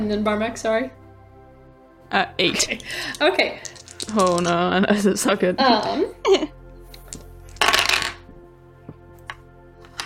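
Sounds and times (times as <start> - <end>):
speech: 0.0 - 1.0, 2.1 - 6.6
multiple dice rolling on a table: 3.6 - 4.6, 7.6 - 8.2.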